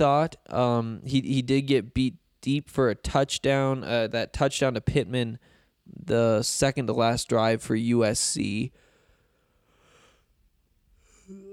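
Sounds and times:
speech: 0.0 - 8.8
person yawning: 11.1 - 11.5.

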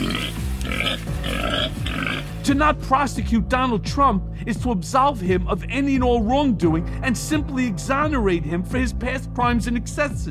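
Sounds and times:
pig grunting and snorting: 0.0 - 2.4
speech: 2.4 - 10.2.

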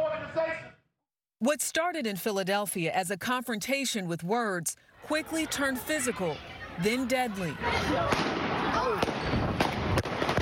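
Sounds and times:
speech: 1.4 - 8.4
crowd shouting with raised voices: 4.9 - 10.4
gunfire: 8.0 - 10.4.

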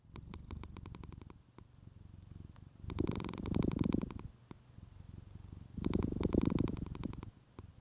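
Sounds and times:
young cat purring: 0.0 - 7.7.

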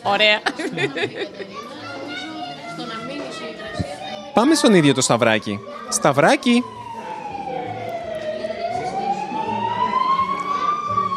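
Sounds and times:
speech: 0.0 - 1.7, 4.4 - 6.8
laughter: 0.4 - 1.7
ambulance siren wailing outside: 3.8 - 11.1.

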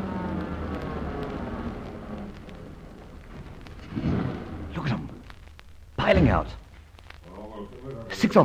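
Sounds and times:
car engine drone slowing to a stop: 0.0 - 5.5
speech: 6.1 - 6.6, 8.1 - 8.4.

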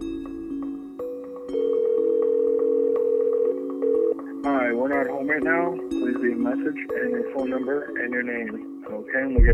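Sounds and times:
outgoing phone call ringback tones: 1.4 - 4.5
speech: 4.7 - 9.5.

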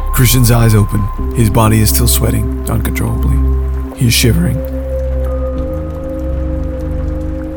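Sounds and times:
speech: 0.2 - 4.7
rain splattering on a roof: 4.7 - 7.5.

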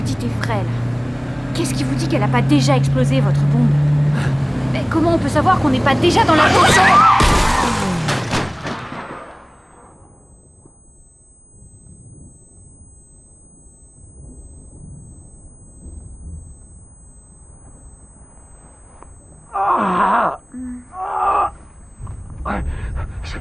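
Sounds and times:
speech: 0.2 - 1.0, 1.6 - 7.2
car hitting a person with a loud violent crash: 6.5 - 9.6
low quiet rumble: 10.4 - 23.3
short pained groan: 19.5 - 21.6.

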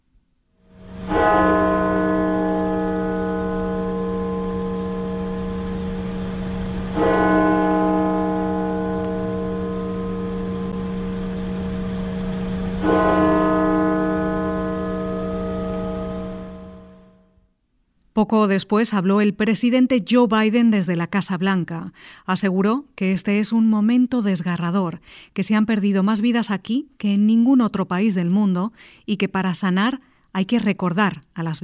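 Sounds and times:
steady low hum: 0.6 - 17.5
large cathedral church bell tolling: 0.7 - 17.3
speech: 18.2 - 31.6.

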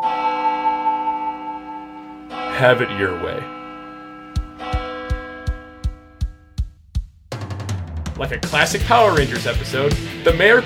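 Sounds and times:
clock bell striking noon: 0.0 - 6.6
speech: 2.6 - 3.6, 8.2 - 10.6.

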